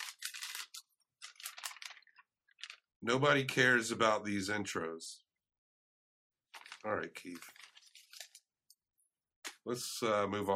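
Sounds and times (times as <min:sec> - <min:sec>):
paper note being handled and rustled: 0:00.0 - 0:02.9, 0:06.5 - 0:08.5
speech: 0:03.0 - 0:05.2, 0:06.8 - 0:07.6, 0:09.6 - 0:10.5.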